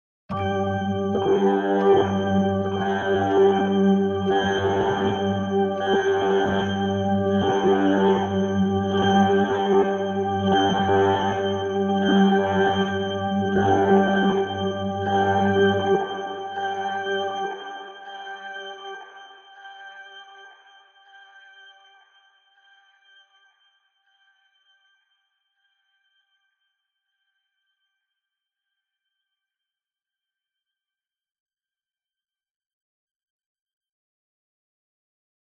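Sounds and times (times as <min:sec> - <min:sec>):
organ: 0:00.3 - 0:17.9.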